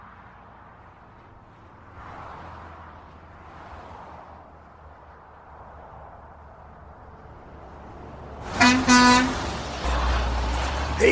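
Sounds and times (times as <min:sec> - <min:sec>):
truck horn tooting: 0:08.6 - 0:10.1.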